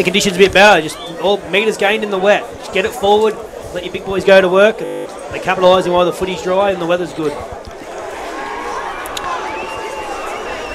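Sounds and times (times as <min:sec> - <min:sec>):
speech: 0:00.0 - 0:07.6
football crowd chatter and murmuring at a country ground: 0:00.0 - 0:10.7.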